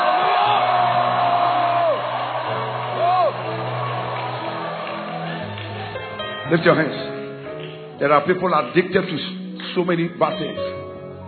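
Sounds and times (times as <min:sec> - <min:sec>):
large audience shouting and screaming: 0:00.0 - 0:06.1
speech: 0:06.5 - 0:07.1, 0:08.0 - 0:10.7.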